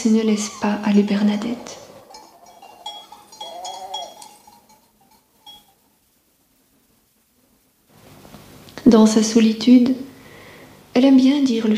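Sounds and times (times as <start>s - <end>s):
speech: 0.0s - 1.8s, 8.8s - 10.1s, 11.0s - 11.7s
faint outdoor background: 0.0s - 11.7s
sheep bleating: 0.3s - 4.8s.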